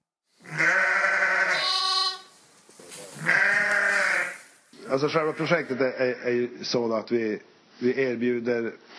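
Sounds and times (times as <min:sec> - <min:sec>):
ewes bleating: 0:00.4 - 0:02.3, 0:03.2 - 0:04.5
speech: 0:04.9 - 0:08.9.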